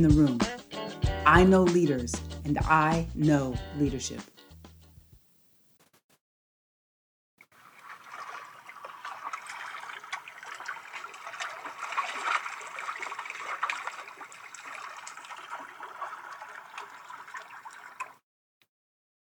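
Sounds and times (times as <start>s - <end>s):
speech: 0.0s - 0.5s, 1.3s - 4.3s
flowing water: 7.6s - 18.2s.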